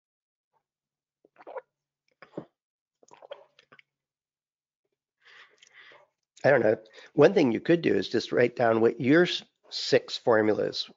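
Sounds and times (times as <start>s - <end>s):
person sipping water: 1.3s - 3.9s, 5.3s - 7.1s
swallowing: 1.3s - 3.9s
soft breath out: 5.2s - 6.1s
speech: 6.4s - 10.9s.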